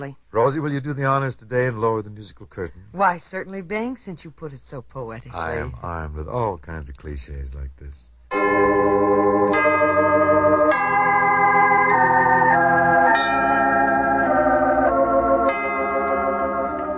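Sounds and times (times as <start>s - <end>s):
speech: 0.0s - 9.5s
church bells ringing: 8.3s - 16.9s
steady resonant musical backdrop: 8.3s - 16.9s.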